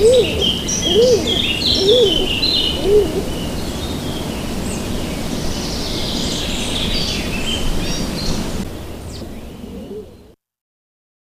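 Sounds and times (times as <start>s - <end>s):
stock dove giving low hooted coos: 0.0s - 3.7s, 9.5s - 10.4s
small birds chirping and twittering: 0.0s - 10.4s.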